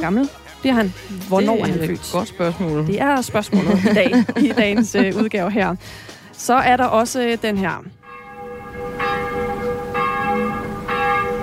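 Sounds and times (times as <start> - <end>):
speech: 0.0 - 8.0
laughter: 1.2 - 5.7
church bells ringing: 8.0 - 11.4.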